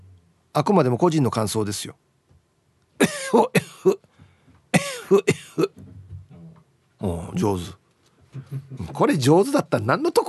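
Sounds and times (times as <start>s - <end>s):
speech: 0.6s - 2.1s, 3.0s - 4.1s, 4.7s - 5.9s, 7.0s - 7.8s, 8.4s - 10.2s
person deliberately coughing in short harsh bursts: 3.0s - 4.0s, 4.8s - 5.8s.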